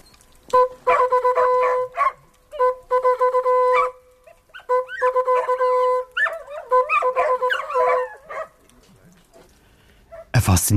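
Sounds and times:
brass hunting horn playing a hunting signal: 0.4 - 8.5.

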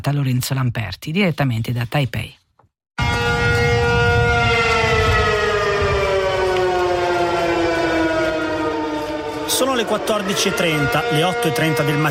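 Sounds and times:
speech: 0.0 - 2.4, 9.6 - 12.0
air raid sirens wailing: 3.0 - 12.0.

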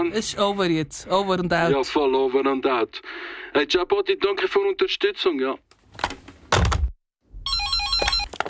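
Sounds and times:
speech: 0.2 - 5.7
electronic telephone ringing with two-pitch trill: 7.4 - 8.4.

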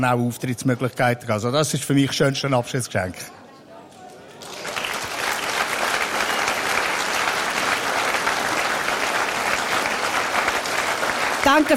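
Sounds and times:
speech: 0.0 - 3.4, 11.5 - 11.7
audience applause: 4.4 - 11.7.

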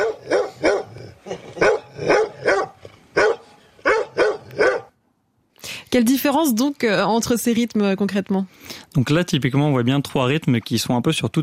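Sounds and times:
dog barking: 0.0 - 5.0
speech: 5.9 - 11.4.

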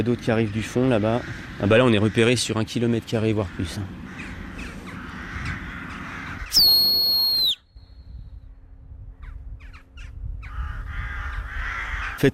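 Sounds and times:
speech: 0.0 - 4.3, 12.2 - 12.3
flock of jackdaws calling with short high squeaky cries: 0.0 - 7.6, 9.2 - 12.3
loud sustained whistle: 6.5 - 7.8.

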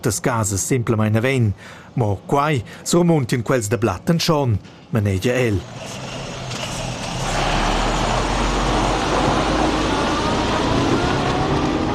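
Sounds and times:
speech: 0.0 - 6.2
heavy truck rumbling past: 5.6 - 11.9.

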